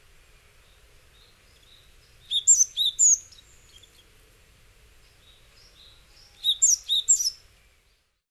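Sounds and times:
Japanese tit faint soft call: 0.3s - 4.1s, 5.0s - 8.1s
Japanese tit high thin chirps in Hyogo Japan: 2.3s - 3.9s, 6.4s - 7.4s.

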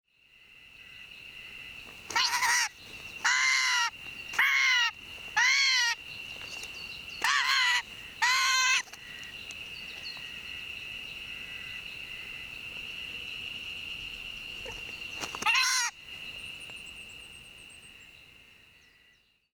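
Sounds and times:
White's Thrush in Chichibu: 1.6s - 10.6s, 14.5s - 16.8s.

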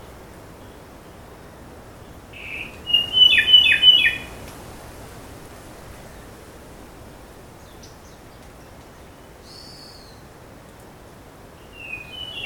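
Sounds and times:
Ryukyu robin giving sharp chattering notes: 2.4s - 4.3s.

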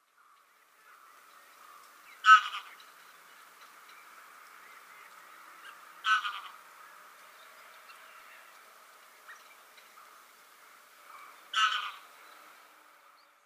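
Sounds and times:
rain: 0.0s - 13.4s
greylag goose calling: 2.1s - 2.9s, 5.6s - 6.6s, 11.1s - 12.2s.

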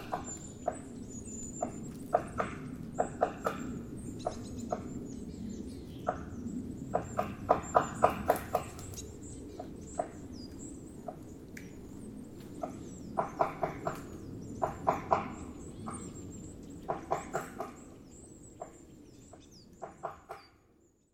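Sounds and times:
white-backed woodpecker calls in Chichibu: 0.0s - 20.8s.

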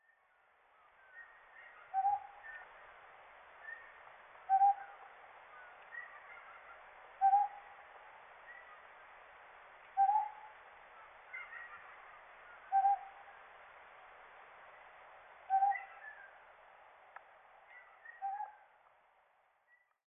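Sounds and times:
Ryukyu Scops Owl calling on Ishigaki: 0.8s - 2.9s, 3.6s - 9.0s, 9.9s - 13.5s, 15.4s - 16.4s, 17.6s - 18.8s.

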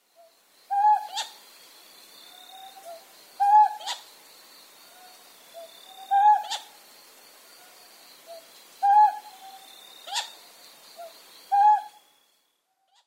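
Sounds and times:
Ryukyu scops owl calling on Ishigaki: 0.2s - 1.4s, 2.3s - 4.1s, 4.9s - 6.8s, 8.3s - 10.4s, 11.0s - 12.0s.

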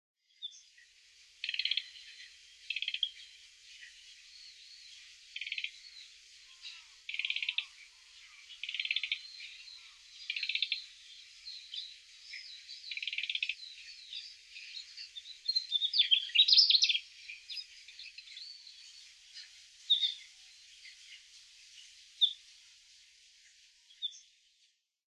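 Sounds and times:
Mugimaki flycatcher calling in Hyogo: 1.4s - 18.7s, 19.4s - 21.1s.

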